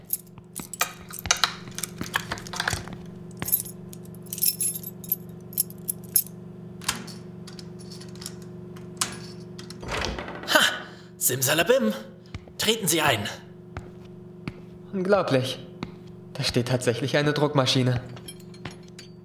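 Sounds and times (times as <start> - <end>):
bunch of keys jangling: 0.0 - 6.4, 18.2 - 19.2
keys scraping and clicking in a door lock: 0.0 - 10.2, 18.1 - 19.2
speech: 11.3 - 12.1, 12.7 - 13.4, 15.0 - 15.6, 16.4 - 18.2.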